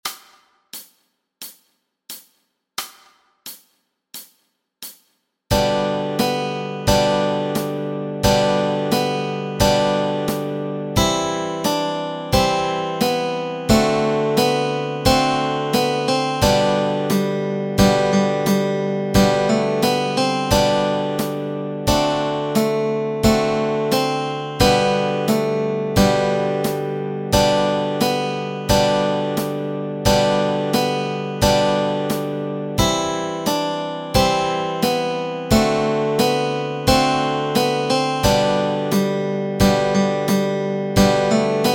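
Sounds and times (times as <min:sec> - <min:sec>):
guitar playing melody and chords: 0:05.5 - 0:41.7
ukulele playing melody and chords: 0:05.6 - 0:41.7.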